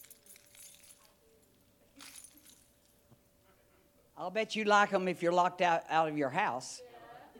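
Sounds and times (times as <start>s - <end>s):
keys jangling faintly: 0.0s - 3.1s
speech: 4.2s - 6.9s.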